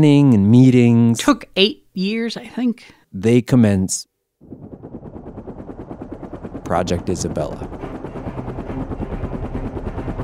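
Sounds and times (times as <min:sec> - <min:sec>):
speech: 0:00.0 - 0:05.1, 0:06.7 - 0:07.9
MD-500 small single-turbine five-blade helicopter rotor chop: 0:04.4 - 0:10.2.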